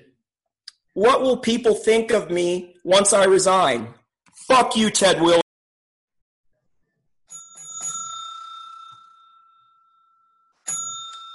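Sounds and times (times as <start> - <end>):
speech: 1.0 - 5.4
bell ringing: 7.3 - 11.3.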